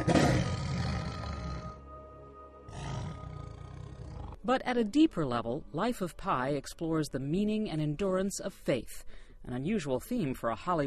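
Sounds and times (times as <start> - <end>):
tiger roaring: 0.0 - 1.8, 2.7 - 4.4
speech: 4.5 - 10.8.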